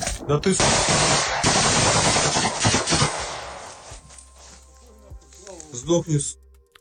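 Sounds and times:
speech: 0.3 - 1.7, 5.7 - 6.4
automatic gunfire in a war video: 0.6 - 3.9.

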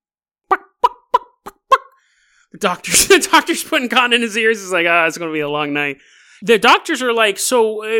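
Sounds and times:
person imitating chicken clucking: 0.5 - 2.0
speech: 2.5 - 7.9.

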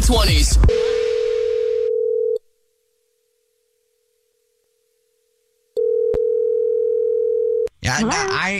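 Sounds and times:
speech: 0.1 - 0.9, 7.9 - 8.5
steady telephone dial tone during outgoing call: 0.7 - 2.4, 5.8 - 7.7.

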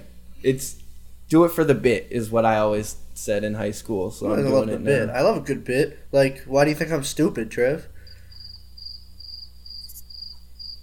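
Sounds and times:
low hum: 0.0 - 10.8
speech: 0.4 - 7.9
crickets chirping outside: 7.9 - 10.8.

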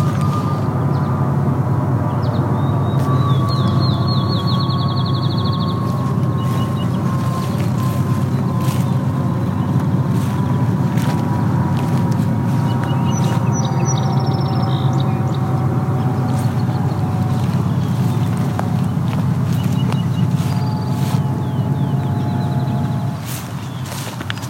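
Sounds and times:
droning rumble of airplanes passing overhead: 0.0 - 24.4
brief high bird calls: 2.0 - 24.4.

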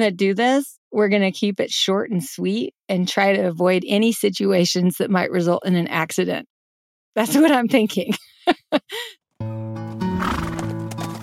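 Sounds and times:
speech: 0.0 - 6.5, 7.2 - 10.4
horse snorting: 10.1 - 11.0
horse whinnying loudly: 10.2 - 10.9
horse hooves clattering on hard ground: 10.2 - 11.2.

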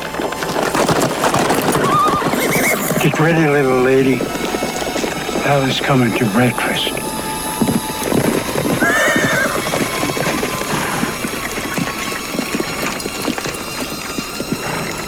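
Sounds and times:
horse hooves clip-clopping: 0.0 - 15.0
horse neighing: 0.9 - 4.4, 8.6 - 15.0
speech: 3.0 - 4.5, 5.4 - 7.1.

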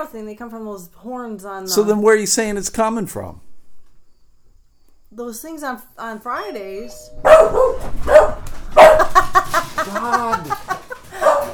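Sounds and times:
speech: 0.0 - 3.5, 5.1 - 8.1, 8.7 - 10.6
dog whining: 6.6 - 9.3
dog barking while running upstairs: 7.1 - 9.5, 11.1 - 11.5
laughter: 8.8 - 11.5.

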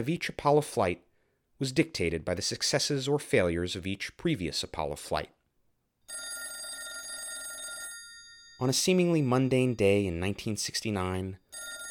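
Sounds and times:
speech: 0.0 - 5.4, 8.6 - 11.8
telephone bell ringing: 6.1 - 9.0, 11.4 - 11.8.

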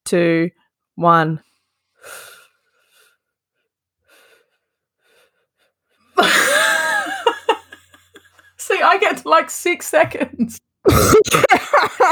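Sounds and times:
speech: 0.1 - 2.3, 8.8 - 12.1
faint quiet breaths: 1.4 - 6.2
laughter: 6.2 - 8.6, 11.2 - 12.1.

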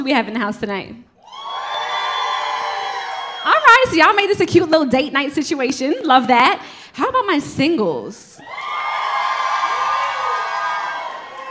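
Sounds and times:
speech: 0.0 - 1.1, 3.4 - 8.6
audience members yelling and whooping: 1.2 - 4.0, 8.4 - 11.4.

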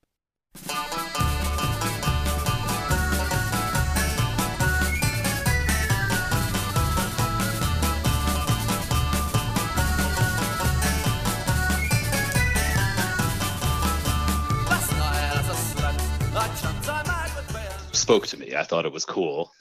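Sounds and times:
loud full band with driving drums and bass: 0.6 - 18.2
lively tin whistle melody: 2.2 - 15.2
speech: 18.1 - 19.6.

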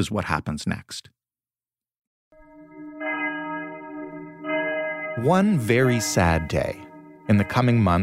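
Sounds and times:
speech: 0.0 - 1.2, 5.2 - 8.0
church bell tolling: 2.4 - 8.0.

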